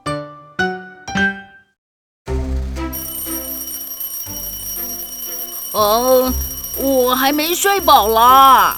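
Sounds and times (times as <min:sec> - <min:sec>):
alarm clock ringing and vibrating: 0:02.9 - 0:08.7
speech: 0:05.8 - 0:08.7.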